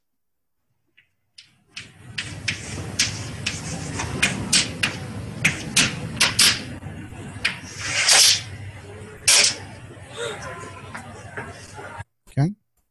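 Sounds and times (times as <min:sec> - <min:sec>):
chalk writing on a chalkboard: 0:02.2 - 0:04.7
faint low murmur of voices in the room: 0:03.5 - 0:12.1.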